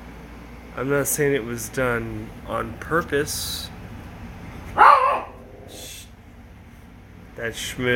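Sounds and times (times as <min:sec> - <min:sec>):
quiet hum: 0:00.0 - 0:07.9
speech: 0:00.8 - 0:03.8, 0:07.4 - 0:07.9
hunting dog barking: 0:04.8 - 0:05.5.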